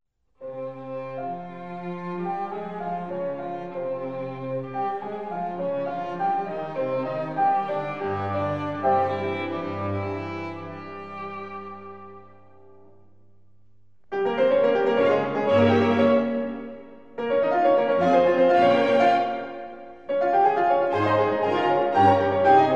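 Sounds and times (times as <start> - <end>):
piano quintet: 0.4 - 13.2, 14.0 - 22.7.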